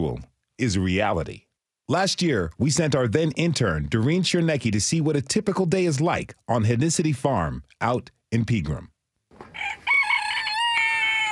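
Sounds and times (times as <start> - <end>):
speech: 0.0 - 9.8
farm rooster crowing: 9.4 - 11.2.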